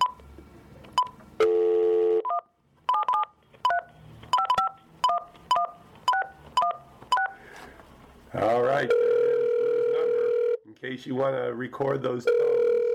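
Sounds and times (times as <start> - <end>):
telephone dial tone: 1.4 - 2.3, 9.0 - 10.6, 12.3 - 12.9
telephone keypad beeps as a phone is dialed: 2.2 - 7.4
speech: 11.0 - 12.5.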